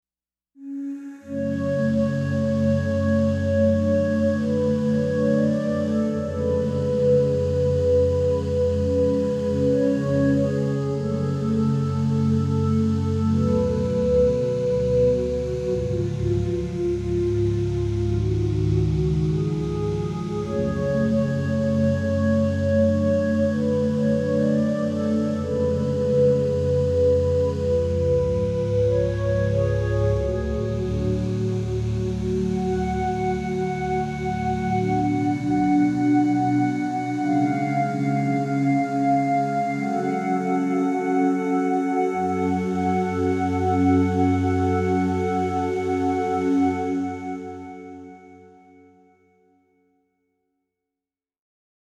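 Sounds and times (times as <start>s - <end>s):
choir oohs: 0.8s - 48.4s.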